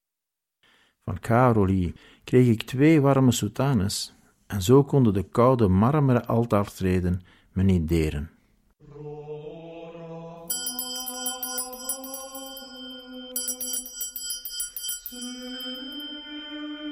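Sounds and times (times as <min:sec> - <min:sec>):
speech: 0:01.1 - 0:08.4
bright shimmering bell ringing in an icy church: 0:10.5 - 0:16.9.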